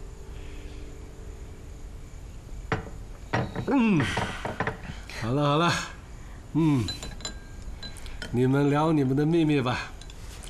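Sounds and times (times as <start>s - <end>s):
glasses clinking together in a toast: 2.7s - 4.9s, 6.8s - 10.2s.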